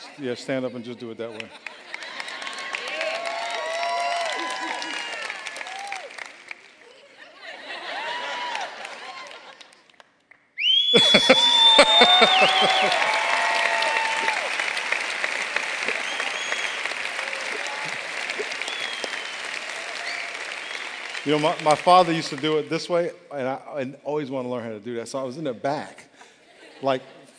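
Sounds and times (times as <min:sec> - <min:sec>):
speech: 0:00.2 - 0:01.8, 0:21.3 - 0:26.0, 0:26.8 - 0:27.2
laughter: 0:01.3 - 0:03.0, 0:07.0 - 0:09.7, 0:11.0 - 0:13.5, 0:26.2 - 0:27.3
crowd applauding and cheering: 0:01.7 - 0:07.0, 0:07.9 - 0:09.8, 0:10.6 - 0:23.0
person whistling loudly: 0:10.6 - 0:13.2, 0:18.6 - 0:20.9.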